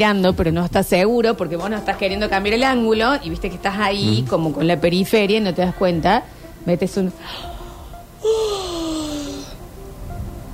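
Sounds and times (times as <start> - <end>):
speech: 0.0 - 7.6, 8.2 - 8.6
person faking a drawn-out yawn: 8.2 - 9.6.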